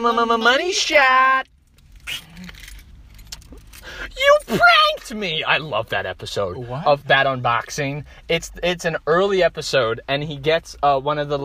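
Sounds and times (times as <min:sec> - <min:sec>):
speech: 0:00.0 - 0:01.5, 0:02.1 - 0:02.5, 0:04.0 - 0:11.4
keys jangling: 0:01.8 - 0:03.9.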